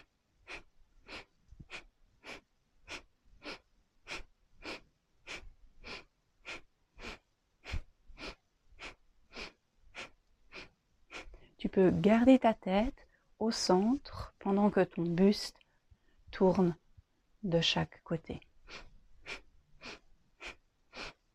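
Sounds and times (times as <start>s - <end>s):
person breathing rapidly during a seated torso-rotation exercise: 0.0s - 11.6s, 15.8s - 16.3s, 18.6s - 21.3s
speech: 11.7s - 15.6s, 16.4s - 16.8s, 17.4s - 18.8s.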